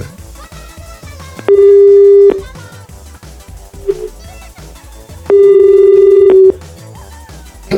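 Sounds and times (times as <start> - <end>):
telephone busy signal while dialing: 1.4 - 2.4, 5.3 - 6.6.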